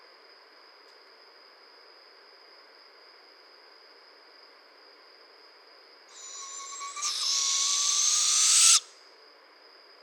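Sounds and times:
thin steady high tone: 6.1s - 8.9s
barred owl rasping hiss: 6.1s - 9.0s.

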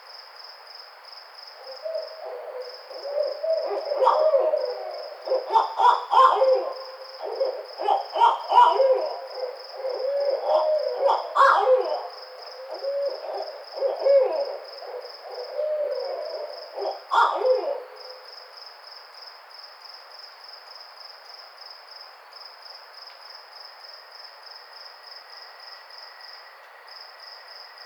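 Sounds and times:
steady high pulsing insect chorus: 0.1s - 27.8s
barred owl loud uneven hoots and cackling notes: 1.7s - 18.2s.

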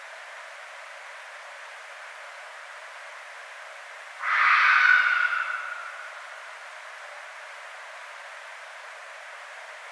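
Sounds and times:
red fox scream: 4.2s - 6.2s.

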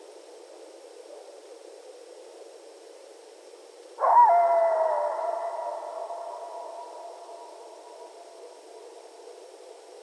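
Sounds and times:
coyotes howling at night: 4.0s - 10.0s.

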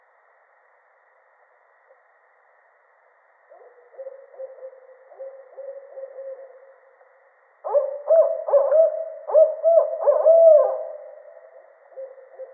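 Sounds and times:
barred owl hooting: 3.5s - 6.7s, 7.6s - 12.5s.

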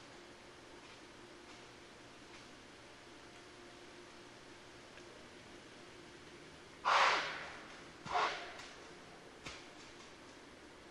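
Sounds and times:
White-tailed deer snorts: 6.8s - 8.6s.

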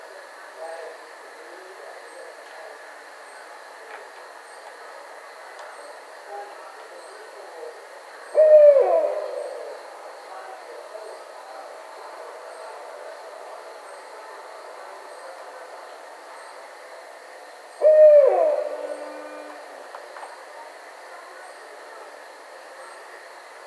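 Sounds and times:
Barred owl hooting: 8.3s - 10.0s, 17.8s - 19.8s.

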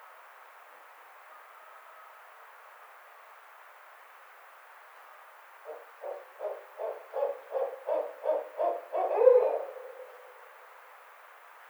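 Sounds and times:
barred owl hooting: 5.7s - 10.6s.

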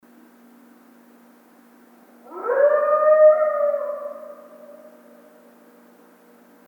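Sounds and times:
coyote howling: 2.2s - 5.9s.

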